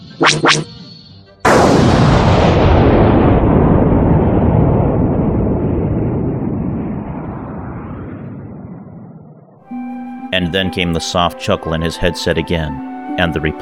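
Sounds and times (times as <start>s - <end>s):
speech: 0.2s - 0.7s, 10.4s - 13.6s
loud explosion with deep rumbling roar: 1.4s - 9.6s
starfighter cannon blasts: 1.5s - 9.6s.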